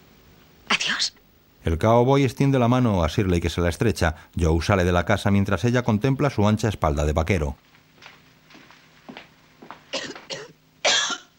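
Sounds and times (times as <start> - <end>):
speech: 1.0 - 7.7
sick man coughing on a cot in a pigsty: 9.9 - 11.3.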